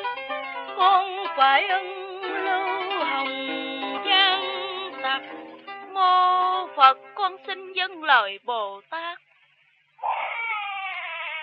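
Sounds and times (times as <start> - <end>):
speech: 0.8 - 4.2, 5.1 - 9.2
baby wailing in a stage drama: 10.0 - 11.4.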